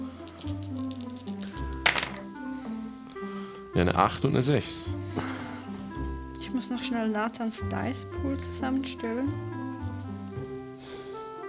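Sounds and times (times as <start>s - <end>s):
soft music: 0.0s - 11.4s
three dice clattering across a table: 0.2s - 2.4s
speech: 3.8s - 5.3s, 6.5s - 9.6s.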